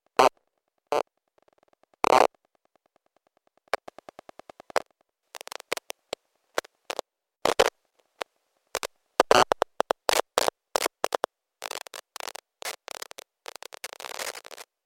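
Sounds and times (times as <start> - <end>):
PC laptop WiFi data: 3.7 - 14.7.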